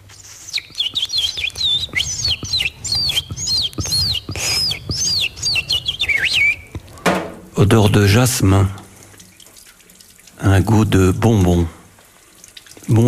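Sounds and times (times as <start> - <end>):
small birds singing in a distant forest: 0.2 - 7.1
speech: 7.6 - 8.8, 10.6 - 11.8, 12.9 - 13.0.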